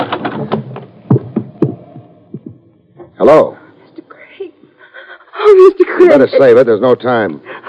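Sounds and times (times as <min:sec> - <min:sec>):
house front door being opened: 0:00.0 - 0:03.2
thumps: 0:00.0 - 0:03.2
speech: 0:03.2 - 0:03.6, 0:06.1 - 0:07.5.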